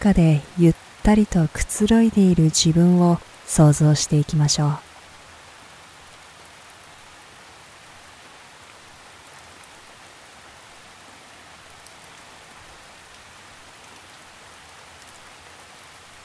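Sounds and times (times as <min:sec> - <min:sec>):
speech: 0:00.0 - 0:04.9
steady rain falling on a forest: 0:00.0 - 0:16.2.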